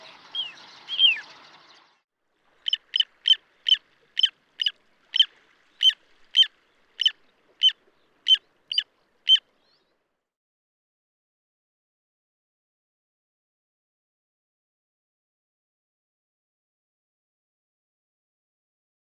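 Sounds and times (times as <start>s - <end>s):
little ringed plover high piping calls: 2.7s - 9.4s.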